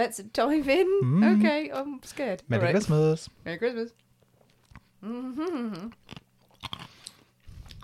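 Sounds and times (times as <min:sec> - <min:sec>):
speech: 0:00.0 - 0:04.0, 0:05.0 - 0:06.2
brief hummed vocal sound: 0:01.0 - 0:01.6, 0:05.0 - 0:06.0
big chunks of ice in a cold blended drink bitten and chewed: 0:06.0 - 0:07.2.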